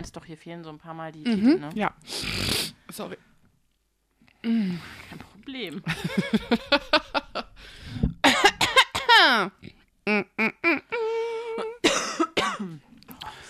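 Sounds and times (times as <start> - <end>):
speech: 0.0 - 3.3, 4.4 - 7.9, 9.2 - 10.3
person coughing: 8.2 - 9.4, 11.8 - 12.8
voiced chuckle-like sounds: 10.0 - 11.8.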